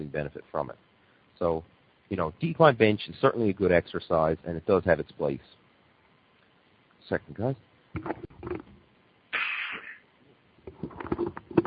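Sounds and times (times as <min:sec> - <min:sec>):
speech: 0:00.0 - 0:05.6, 0:07.1 - 0:08.7
person coughing: 0:09.4 - 0:10.0.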